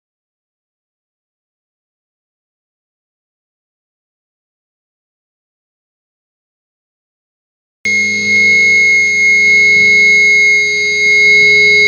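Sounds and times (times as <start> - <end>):
guitar feedback fill: 7.9 - 11.8.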